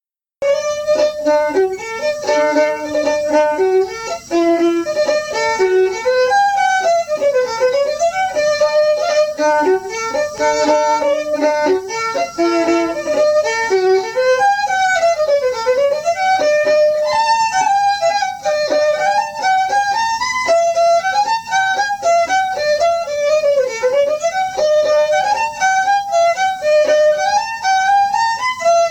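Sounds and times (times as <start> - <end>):
fiddle tune: 0.4 - 28.8.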